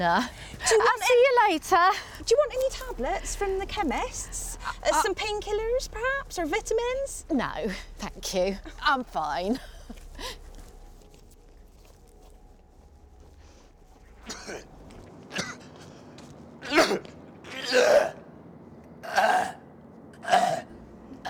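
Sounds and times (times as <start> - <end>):
speech: 0.0 - 10.4
throat clearing: 14.2 - 14.7, 15.3 - 15.7, 16.6 - 18.2
man coughing with harsh chesty bursts: 14.2 - 15.7, 16.6 - 18.2.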